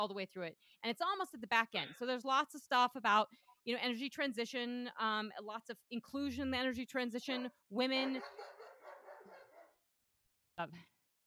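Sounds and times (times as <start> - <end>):
speech: 0.0 - 8.6, 10.6 - 11.2
German Shepherd barking: 8.0 - 9.8.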